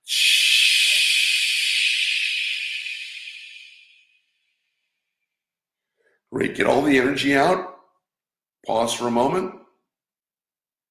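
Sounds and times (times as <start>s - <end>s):
loud exhale through the mouth after a held breath in a breathing exercise: 0.0s - 4.6s
speech: 6.3s - 7.7s, 8.7s - 9.6s.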